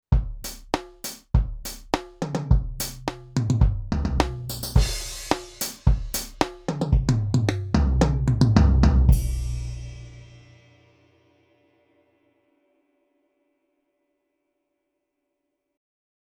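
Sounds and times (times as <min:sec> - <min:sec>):
drum kit: 0:00.0 - 0:11.0.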